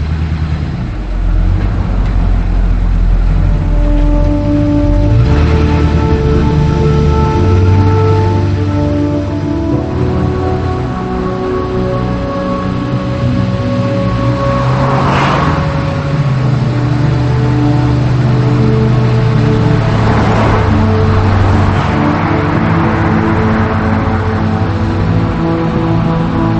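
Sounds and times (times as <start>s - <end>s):
car engine shifting gears as the car pulls off and drives away: 0.0s - 26.5s.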